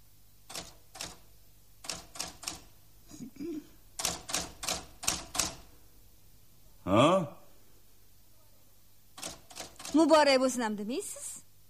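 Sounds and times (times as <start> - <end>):
brand-new typewriter clacking: 0.5 - 1.2, 1.8 - 2.7, 4.0 - 5.7, 9.2 - 10.2
speech: 10.0 - 11.4.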